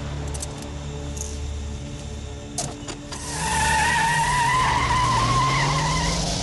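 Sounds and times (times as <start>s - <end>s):
car engine idling low and revving hard on a sunny street: 0.0s - 6.4s
long loud tire squeal as a car skids away at speed: 3.1s - 6.4s.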